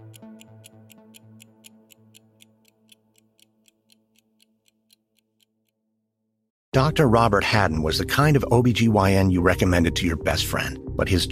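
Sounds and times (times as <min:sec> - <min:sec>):
clock ticking: 0:00.0 - 0:05.8
speech: 0:06.8 - 0:11.2.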